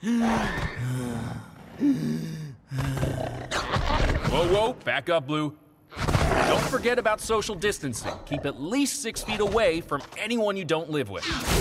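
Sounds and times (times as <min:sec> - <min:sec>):
person imitating labored gasping breaths of a coronavirus symptom: 0:00.0 - 0:03.5
speech: 0:04.5 - 0:05.6, 0:06.3 - 0:11.5.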